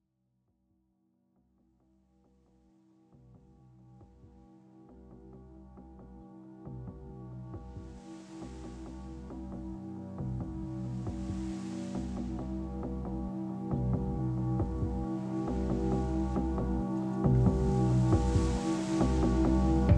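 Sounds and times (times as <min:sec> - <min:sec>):
sea: 0:07.6 - 0:19.9.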